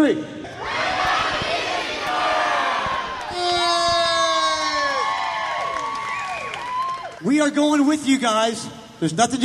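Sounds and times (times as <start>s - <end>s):
speech: 0.0s - 0.4s, 7.3s - 9.4s
large crowd shouting in unison: 0.5s - 5.5s
scattered cheers: 3.0s - 7.2s.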